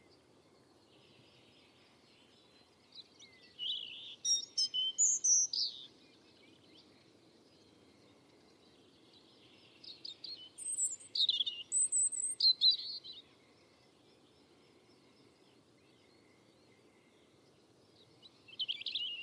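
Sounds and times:
European robin singing: 0:00.8 - 0:13.4, 0:15.0 - 0:19.2.

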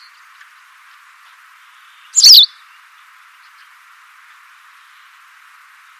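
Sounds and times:
low background hiss: 0:00.0 - 0:05.9
white wagtail two-part chirp call: 0:02.2 - 0:02.5.

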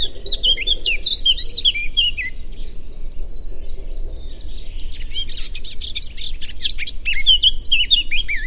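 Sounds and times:
low background rumble: 0:00.0 - 0:07.1
Eurasian blackcap singing: 0:00.0 - 0:08.4.

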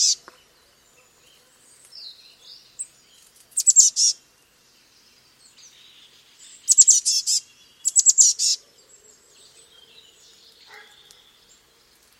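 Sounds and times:
Eurasian blue tit singing: 0:00.0 - 0:04.2, 0:04.8 - 0:12.1.

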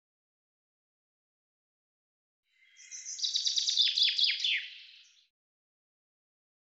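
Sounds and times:
common chaffinch song of descending notes: 0:02.5 - 0:05.3.

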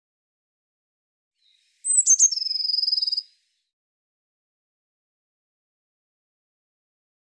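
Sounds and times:
Eurasian blue tit call with churring trill: 0:01.9 - 0:03.2.

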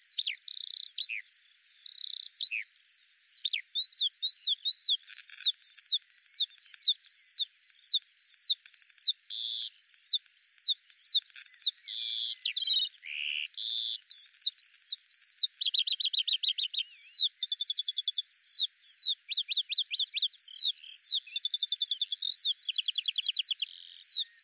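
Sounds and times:
Eurasian skylark song with mixed chirps: 0:00.0 - 0:24.4.

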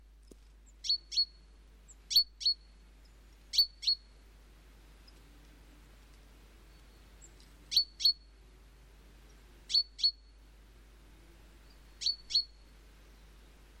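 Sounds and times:
quiet background hiss: 0:00.0 - 0:13.7
great tit calls: 0:00.6 - 0:04.2, 0:06.6 - 0:08.4, 0:09.7 - 0:10.4, 0:11.5 - 0:13.7.

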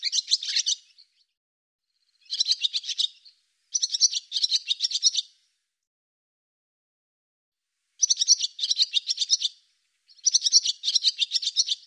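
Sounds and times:
barn swallow twittering call: 0:00.0 - 0:01.2, 0:02.2 - 0:05.3, 0:08.0 - 0:11.8.

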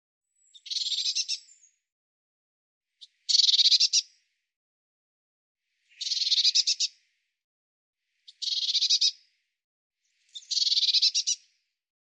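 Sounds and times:
Eurasian blue tit harsh buzzy churring calls: 0:00.6 - 0:01.5, 0:03.0 - 0:04.1, 0:06.0 - 0:06.9, 0:08.3 - 0:09.2, 0:10.4 - 0:11.4.

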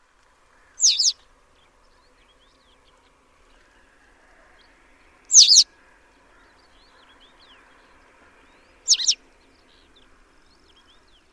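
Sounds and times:
sharp very high bird chirps: 0:00.8 - 0:01.2, 0:05.3 - 0:05.6, 0:08.9 - 0:09.2.

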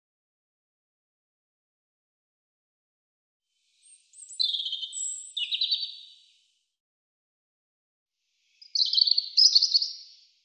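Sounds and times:
European robin song: 0:03.6 - 0:06.6, 0:08.5 - 0:10.3.

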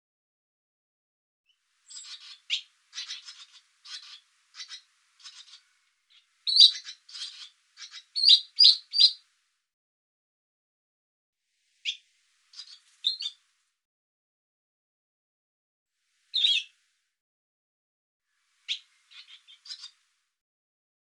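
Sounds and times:
barn swallow twittering with scratchy clicking chirps: 0:01.9 - 0:09.2, 0:11.8 - 0:12.0, 0:12.6 - 0:13.4, 0:16.3 - 0:16.7, 0:18.6 - 0:20.0.

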